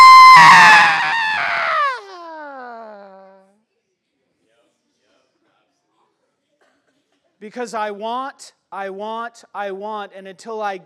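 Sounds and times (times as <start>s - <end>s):
voice mimicking a child screaming in a shopping cart: 0.0s - 3.4s
speech: 7.4s - 10.8s.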